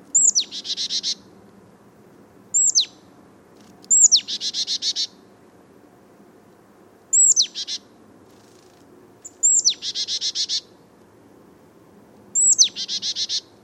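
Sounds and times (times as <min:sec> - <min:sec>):
Poecile palustris calls: 0:00.2 - 0:01.2, 0:02.5 - 0:02.9, 0:03.9 - 0:05.1, 0:07.1 - 0:10.7, 0:12.4 - 0:13.5.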